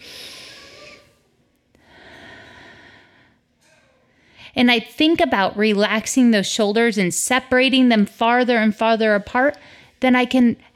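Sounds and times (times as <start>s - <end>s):
deep breath taken to ease tension: 0.0s - 1.1s, 1.8s - 3.5s
speech: 4.5s - 10.7s.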